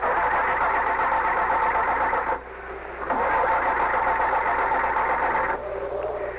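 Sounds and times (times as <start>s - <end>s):
engine of a car crashed into a tree cranking: 0.0s - 2.4s, 3.0s - 6.2s.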